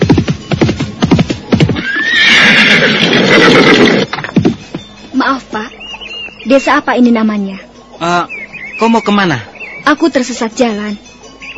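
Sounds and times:
horse with rider hoofbeats clopping: 0.0 - 6.4
horse whinnying: 1.7 - 4.1
speech: 6.5 - 11.1.

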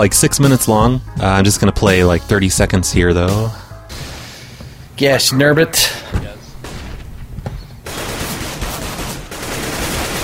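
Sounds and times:
speech: 0.0 - 3.6, 5.0 - 6.3
video game gunfire: 7.8 - 10.2.

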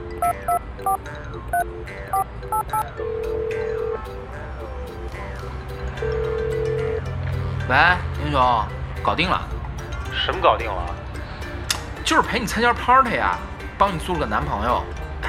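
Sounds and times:
long steady telephone tones: 0.2 - 1.0, 2.1 - 4.0, 6.0 - 7.0
telephone keypad beeps: 0.2 - 2.8
speech: 0.2 - 6.6, 7.7 - 11.0, 12.1 - 15.0.

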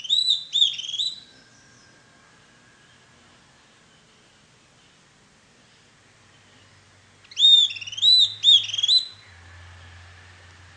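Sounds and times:
bird singing whistled phrases: 0.0 - 10.1
faint low hum: 0.0 - 10.7.

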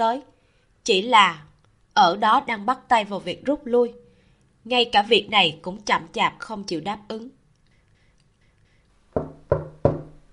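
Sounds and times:
speech: 0.0 - 4.0, 4.6 - 7.4
knocking on a door: 9.1 - 10.2.

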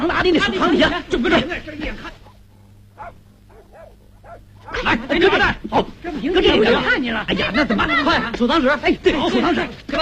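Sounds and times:
low hum: 0.0 - 10.0
speech: 0.1 - 2.1, 4.8 - 10.0
dog barking during a traditional Chinese stage performance: 2.1 - 5.0
laughter: 6.6 - 8.6.

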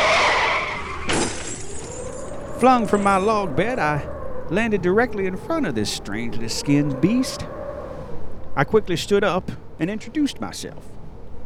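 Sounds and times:
debris scattering: 0.0 - 2.7
semi truck crashing into the forest: 0.0 - 3.6
semi truck tires skidding off the road: 0.0 - 11.4
speech: 2.6 - 7.6, 8.6 - 11.0.

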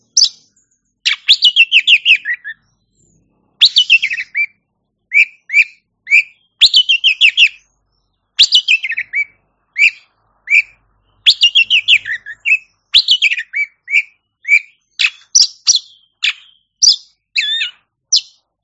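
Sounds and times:
champion Oriental magpie-robin singing whistles and trills: 0.0 - 18.6.

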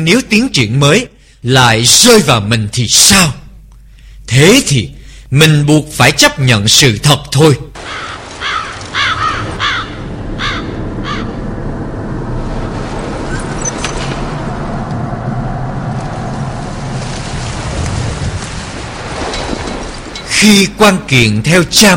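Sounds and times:
speech: 0.0 - 3.4, 4.3 - 8.1, 20.4 - 21.9
black crows cawing while circling overhead: 7.8 - 11.4
steady rain: 7.8 - 20.4
low rumbling: 8.8 - 21.6.

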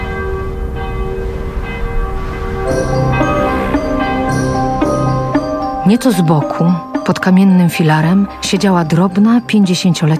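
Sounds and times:
distant church bell ringing from a church on a rocky hill: 0.0 - 10.1
steady droning background: 0.0 - 10.1
speech: 5.9 - 10.1.

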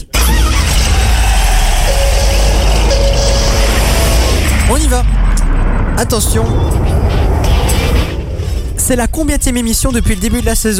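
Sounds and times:
car engine running: 0.6 - 8.8
speech: 4.8 - 5.2, 6.0 - 7.2, 8.9 - 10.7.

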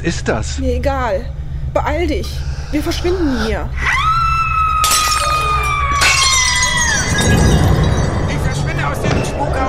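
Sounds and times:
speech: 0.0 - 4.0
tinkling glass shards: 4.8 - 9.4
glass shattering loudly in a castle: 4.8 - 9.5.

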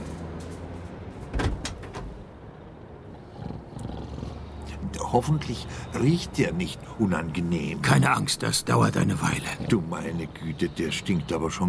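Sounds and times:
delivery van door latch and panel clattering open: 1.3 - 2.2
speech: 5.1 - 11.6.

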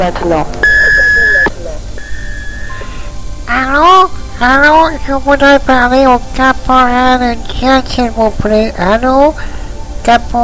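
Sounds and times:
speech: 0.0 - 0.6, 3.7 - 10.4
noise: 0.0 - 10.4
electronic beep tone: 0.6 - 3.2
faint steady tone: 0.6 - 10.4.

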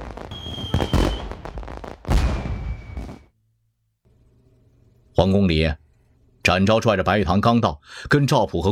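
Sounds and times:
whistling signal arrows bursting in the sky: 0.0 - 3.3
thin steady high whistle of signal arrows: 0.3 - 1.4, 2.3 - 3.3
speech: 5.2 - 5.8, 6.4 - 8.6.

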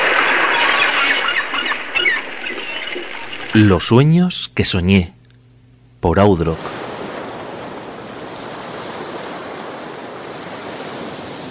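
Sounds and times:
ocean waves crashing against cliffs: 0.0 - 3.8, 6.4 - 11.5
speech: 3.6 - 5.2, 6.0 - 6.8.

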